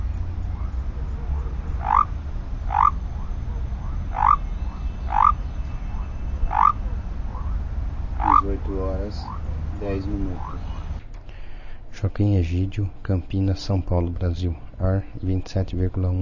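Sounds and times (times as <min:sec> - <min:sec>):
low background noise: 0:00.0 - 0:16.1
Basin white-lipped frog Leptodactylus mystaceus whistling rising notes: 0:00.2 - 0:09.5, 0:10.2 - 0:10.9
speech: 0:09.1 - 0:10.7, 0:12.0 - 0:16.1.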